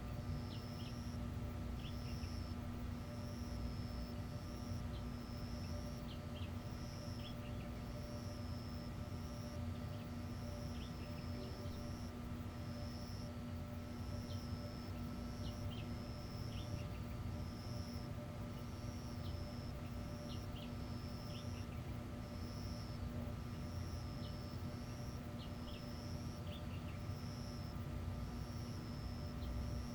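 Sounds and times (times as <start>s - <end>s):
night insects in an indoor school hall: 0.0s - 29.9s.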